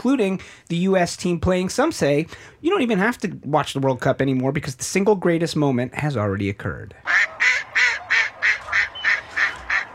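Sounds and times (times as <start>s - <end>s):
speech: 0.0s - 7.3s
duck quacking: 7.0s - 9.9s.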